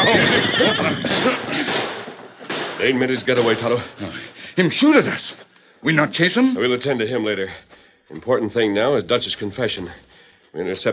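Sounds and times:
powerful stallion whinnying: 0.0 - 1.5
speech: 2.8 - 10.9.

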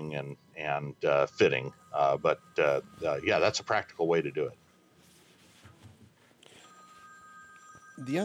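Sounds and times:
telephone ringing with incoming call: 0.0 - 4.7, 6.5 - 8.2
speech: 0.1 - 4.6, 8.0 - 8.2.

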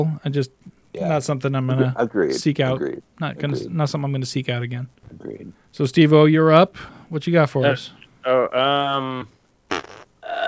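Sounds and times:
speech: 0.0 - 9.4
loud fart noise: 9.7 - 10.4.

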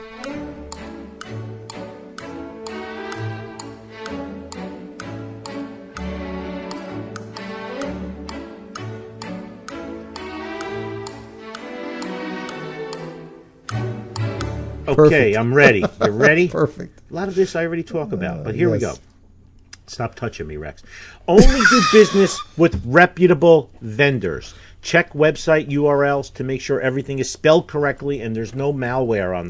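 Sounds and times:
clock-like woodblock tick-tock: 0.0 - 14.6
bouncy orchestral tune: 0.0 - 16.5, 21.4 - 22.9
laughter: 14.9 - 16.9, 21.4 - 22.7
speech: 14.9 - 19.1, 19.9 - 29.4.

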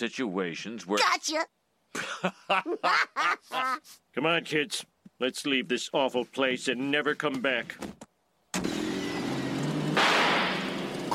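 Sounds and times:
speech: 0.0 - 8.0
laughter: 2.0 - 4.0
rusted car engine starting and running: 8.4 - 11.1.

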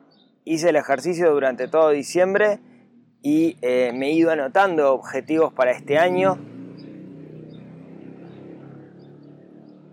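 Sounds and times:
speech: 0.5 - 6.5
motorcycle engine passing by outside: 2.3 - 9.9.

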